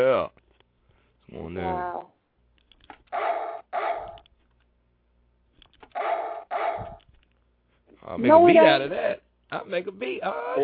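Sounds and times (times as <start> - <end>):
speech: 0.0 - 0.4, 1.3 - 2.2, 8.0 - 10.6
dog barking: 3.1 - 4.2, 6.0 - 7.0.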